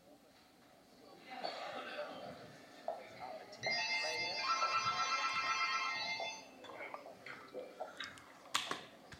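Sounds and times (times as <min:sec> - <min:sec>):
faint voices: 0:00.0 - 0:09.1
telephone ringing with an electronic trill: 0:03.6 - 0:06.6.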